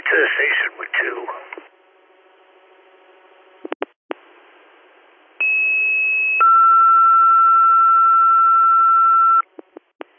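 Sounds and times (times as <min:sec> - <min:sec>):
faint radio hum: 0:00.0 - 0:10.1
speech: 0:00.1 - 0:01.5
radio channel clicks: 0:03.6 - 0:04.0
fire dispatch paging tones over a radio channel: 0:05.4 - 0:09.5.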